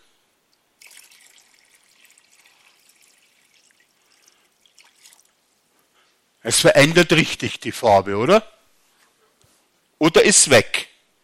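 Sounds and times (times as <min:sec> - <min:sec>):
water pouring into a glass: 0:00.8 - 0:05.4
speech: 0:06.4 - 0:08.5, 0:10.1 - 0:10.9.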